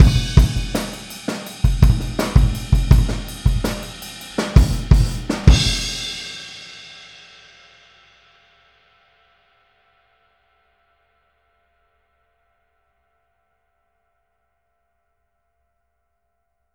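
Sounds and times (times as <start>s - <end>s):
boogaloo outro kick drum beat: 0.0s - 6.0s.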